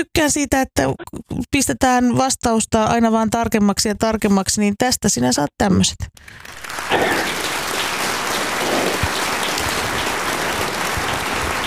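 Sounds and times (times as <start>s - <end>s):
speech: 0.0s - 7.3s
crowd applauding: 6.3s - 11.6s.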